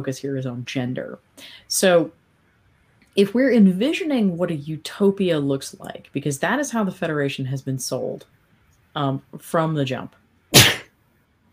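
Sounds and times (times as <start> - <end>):
speech: 0.0 - 2.2, 3.2 - 8.4, 9.0 - 10.6
person sneezing: 10.5 - 10.9.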